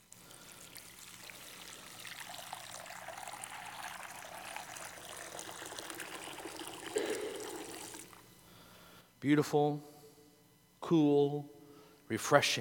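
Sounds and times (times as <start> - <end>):
baptismal water pouring and trickling: 0.0 - 8.2
speech: 9.2 - 9.9, 10.9 - 11.5, 12.1 - 12.5.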